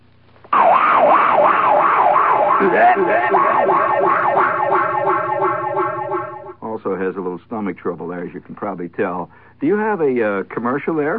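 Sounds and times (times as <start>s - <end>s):
voice imitating a fungus eating through a watermelon patch: 0.6s - 6.6s
speech: 2.6s - 3.8s, 6.8s - 11.1s.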